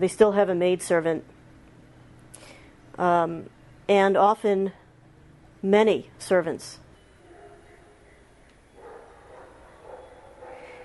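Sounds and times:
speech: 0.0s - 1.4s, 3.0s - 4.8s, 5.6s - 6.8s
several dogs barking: 7.2s - 10.8s.

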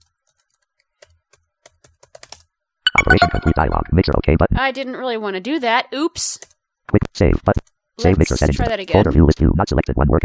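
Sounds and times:
typing on a computer keyboard: 0.0s - 2.5s
speech: 3.0s - 10.2s.

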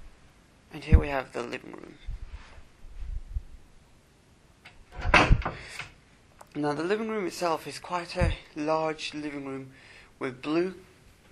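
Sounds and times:
speech: 0.8s - 2.2s, 6.6s - 10.9s
house door to living room creaking open: 4.7s - 5.9s
solid clunk of a house door: 4.9s - 5.8s.

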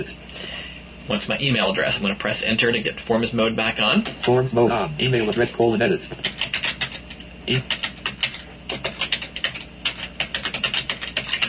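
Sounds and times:
speech: 0.0s - 0.5s, 1.1s - 6.5s, 7.5s - 7.8s
typing an email address on a computer keyboard: 6.2s - 11.4s.

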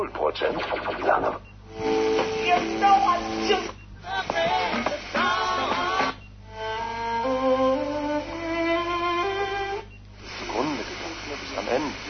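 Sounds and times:
garbled broadcast voices: 0.0s - 6.3s, 10.2s - 12.0s
radio static hissing while a receiver is tuned: 0.0s - 6.4s, 7.0s - 12.0s
speech: 0.2s - 1.9s, 2.5s - 4.3s.

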